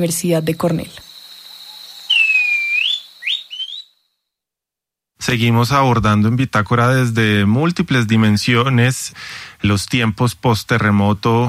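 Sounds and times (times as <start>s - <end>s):
speech: 0.0s - 1.1s, 5.3s - 11.4s
thrush-like schiffornis singing clear whistled notes: 0.8s - 4.0s.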